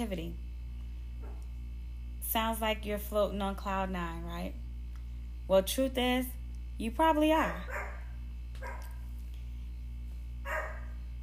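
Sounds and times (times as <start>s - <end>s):
speech: 0.0s - 0.5s, 2.3s - 4.6s, 5.5s - 7.8s
steady low electrical hum: 0.0s - 11.2s
Toy poodle short sharp yaps: 8.6s - 9.0s, 10.5s - 10.9s.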